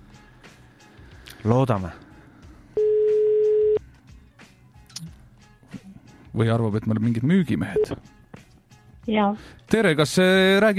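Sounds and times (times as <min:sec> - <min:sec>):
speech: 0:01.4 - 0:02.0, 0:06.4 - 0:08.1, 0:09.1 - 0:10.7
telephone ringback tone during a call: 0:02.8 - 0:03.8.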